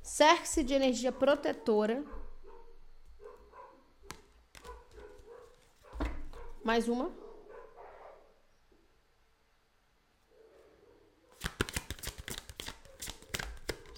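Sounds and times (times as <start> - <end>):
speech: 0.2 - 2.2, 6.6 - 7.2
dog barking: 1.1 - 8.4.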